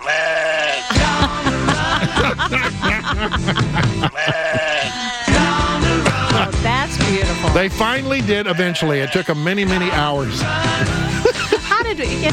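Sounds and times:
chorus of sheep bleating: 0:00.0 - 0:03.1, 0:03.8 - 0:06.6, 0:08.2 - 0:10.3
laughter: 0:00.8 - 0:06.8, 0:08.9 - 0:12.3
speech: 0:03.2 - 0:04.3, 0:07.6 - 0:11.4.

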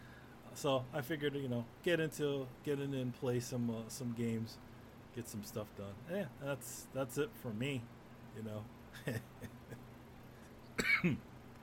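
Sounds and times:
speech: 0:00.6 - 0:09.8, 0:11.0 - 0:11.3
person getting over a cough coughing: 0:10.8 - 0:11.2
throat clearing: 0:10.8 - 0:11.2.

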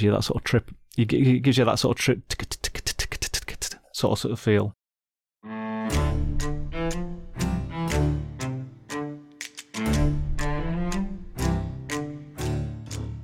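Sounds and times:
speech: 0:00.0 - 0:02.6, 0:03.6 - 0:04.8
sustained tonal musical notes: 0:05.4 - 0:13.2
rhythm bones clicking: 0:05.9 - 0:13.2.

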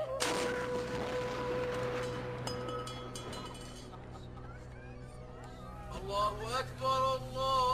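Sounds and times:
Ramadan iftar cannon blast outdoors: 0:00.2 - 0:02.6
speech: 0:06.2 - 0:07.6.

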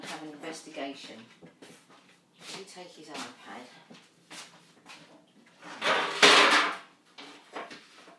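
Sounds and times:
speech: 0:00.1 - 0:01.6, 0:02.4 - 0:04.0
frying pan knocking, scraping and clunking as it is put away: 0:05.8 - 0:06.8.

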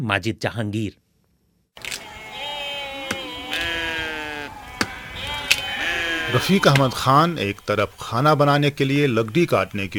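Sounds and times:
speech: 0:00.0 - 0:01.0, 0:06.3 - 0:09.9
sharp clicks: 0:01.8 - 0:02.1
sheep and goats of a nomadic herd bleating while grazing: 0:01.8 - 0:09.6.

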